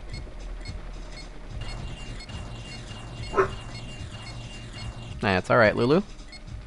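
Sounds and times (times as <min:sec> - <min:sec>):
steady low rumble: 0:00.0 - 0:06.6
dog barking: 0:03.3 - 0:03.6
speech: 0:05.2 - 0:06.2.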